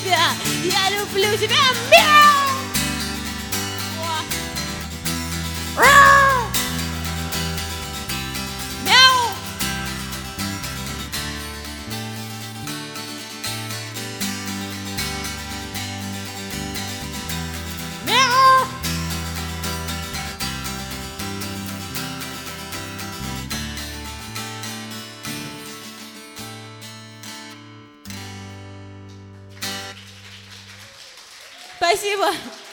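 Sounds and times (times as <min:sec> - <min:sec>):
instrumental music: 0:00.0 - 0:30.7
speech: 0:00.6 - 0:02.5
cat meowing: 0:05.8 - 0:06.6.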